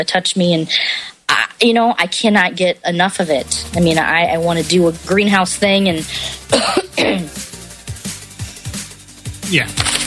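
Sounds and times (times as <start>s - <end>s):
speech: 0.0s - 7.4s, 9.5s - 10.0s
person coughing: 6.5s - 7.4s.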